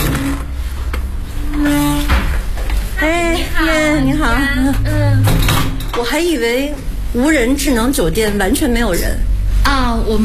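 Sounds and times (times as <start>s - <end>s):
hotel entrance door being pushed open: 0.0s - 6.4s
steady noise: 0.0s - 10.2s
speech: 4.0s - 10.2s.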